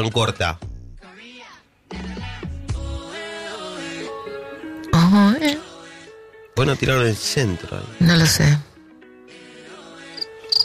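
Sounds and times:
speech: 0.0 - 0.7, 5.1 - 5.7, 6.6 - 8.7
cricket chirping: 10.2 - 10.6.

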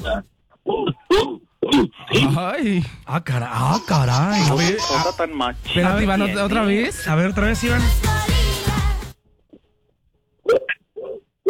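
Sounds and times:
person imitating a dog barking: 0.0 - 2.4, 3.7 - 5.2
speech: 0.1 - 8.5
laughter: 2.1 - 6.9.

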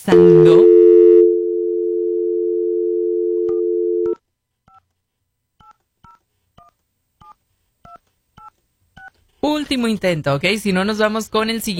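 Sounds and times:
telephone busy tone: 0.2 - 4.2
speech: 9.7 - 11.7.

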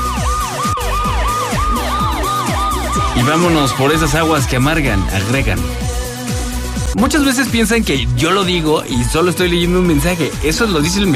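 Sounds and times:
ambulance siren: 0.0 - 5.7
speech: 3.3 - 5.8, 7.0 - 11.1.

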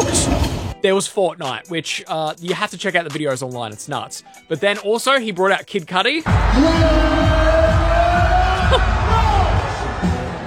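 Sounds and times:
speech: 0.8 - 7.8
concert crowd cheering and yelling: 6.3 - 10.4.

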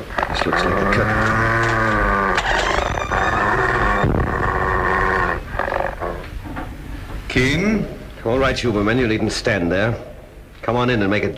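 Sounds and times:
large half-breed wolf dog growling and snarling: 0.0 - 6.4
speech: 0.4 - 1.5, 7.4 - 11.3.

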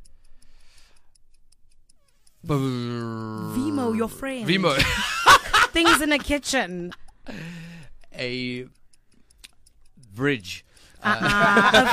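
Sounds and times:
countdown timer clock ticking: 0.0 - 11.9
speech: 2.4 - 7.6, 8.2 - 8.8, 10.2 - 11.9
laughter: 4.6 - 7.5, 11.0 - 11.9.

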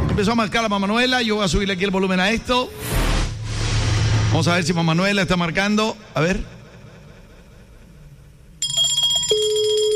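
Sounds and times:
speech: 0.2 - 3.1, 4.3 - 6.6
high-pitched Santa Claus bell ringing: 8.6 - 9.9.

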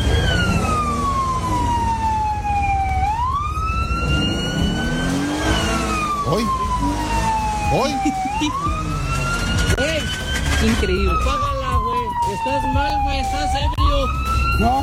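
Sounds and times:
ambulance siren wailing in rising and falling sweeps: 0.0 - 14.8
steady engine and traffic rumble: 0.0 - 14.8
speech: 12.4 - 14.8.

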